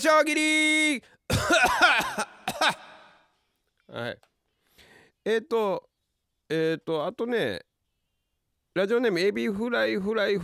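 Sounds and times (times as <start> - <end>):
speech: 0.0 - 2.8, 3.9 - 4.3, 5.2 - 5.9, 6.5 - 7.7, 8.8 - 10.4
person coughing: 1.3 - 3.2.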